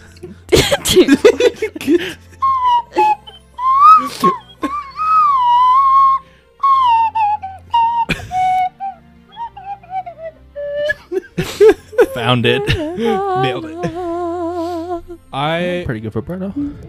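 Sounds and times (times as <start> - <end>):
laughter: 0.0 - 5.6, 9.4 - 14.3
speech: 0.2 - 2.2, 12.3 - 14.0, 15.3 - 16.8
slide whistle playing a wobbly tune of sliding notes: 2.4 - 11.0.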